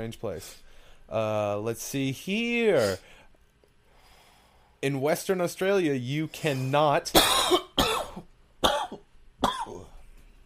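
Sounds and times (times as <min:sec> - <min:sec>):
speech: 0:00.0 - 0:03.2, 0:04.8 - 0:07.6
person coughing harshly: 0:07.2 - 0:10.0.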